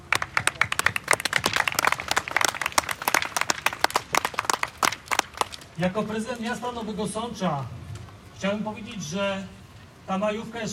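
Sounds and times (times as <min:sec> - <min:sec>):
crowd applauding: 0:00.0 - 0:05.8
speech: 0:05.8 - 0:07.8, 0:08.4 - 0:10.7.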